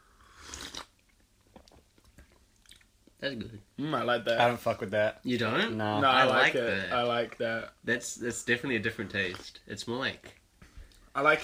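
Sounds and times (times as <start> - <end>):
slurping sip of hot coffee: 0.2 - 0.9
speech: 3.2 - 10.4, 11.2 - 11.4.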